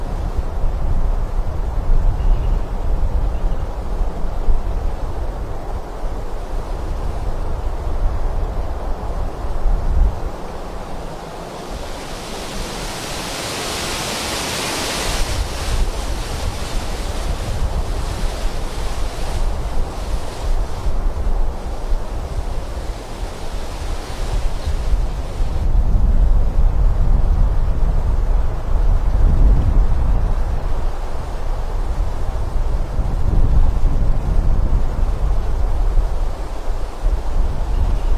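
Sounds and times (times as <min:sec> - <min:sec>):
wind moving through a forest: 0:00.0 - 0:38.1.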